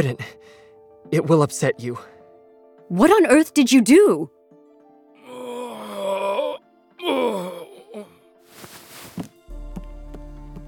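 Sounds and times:
speech: 0:00.0 - 0:02.1, 0:02.9 - 0:04.4
injured man groaning in pain: 0:05.2 - 0:08.2.

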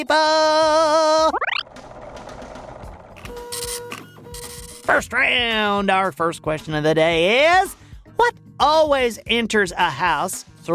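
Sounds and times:
speech: 0:00.0 - 0:01.4, 0:04.9 - 0:10.7
machine spinning up with a whir and clattering hum: 0:01.6 - 0:04.8.

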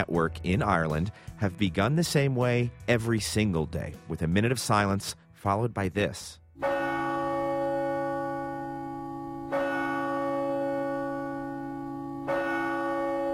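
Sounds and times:
speech: 0:00.0 - 0:06.4
large church bell tolling for the Angelus: 0:06.6 - 0:13.3.

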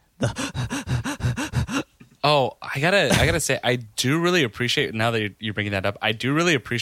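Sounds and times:
person imitating frantic hyperventilating gasps: 0:00.0 - 0:02.0
speech: 0:00.2 - 0:00.4, 0:02.2 - 0:06.7.

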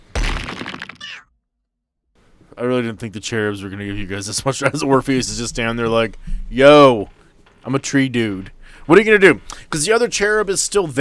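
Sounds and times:
heavy stone rock crashing into someone: 0:00.0 - 0:01.0
stone rock breaking apart into crumbling rubble: 0:00.0 - 0:01.2
speech: 0:02.6 - 0:11.0.

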